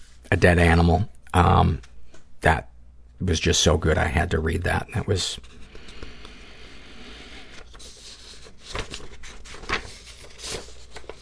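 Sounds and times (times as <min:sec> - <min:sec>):
speech: 0:00.3 - 0:05.6
sheets of paper shuffled and rustled: 0:07.4 - 0:11.2.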